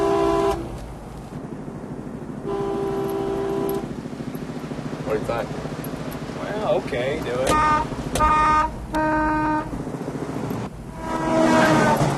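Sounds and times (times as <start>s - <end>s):
car horn honking: 0.0s - 0.7s, 2.4s - 3.9s, 7.3s - 9.8s, 10.9s - 12.1s
road and engine noise: 0.0s - 12.1s
speech: 5.2s - 5.7s, 6.7s - 9.2s.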